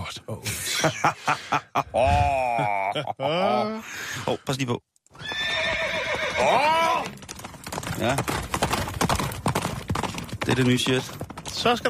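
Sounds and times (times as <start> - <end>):
speech: 0.2 - 1.5, 3.2 - 4.9, 8.0 - 8.4, 10.6 - 11.8
laughter: 0.5 - 3.8
horse hooves clip-clopping at a walking pace: 5.1 - 11.8.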